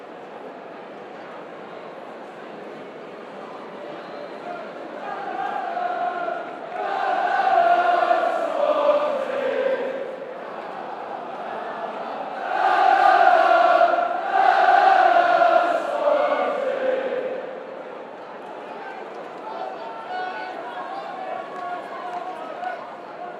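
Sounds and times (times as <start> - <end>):
football crowd chanting nah nah nah: 5.0 - 18.6.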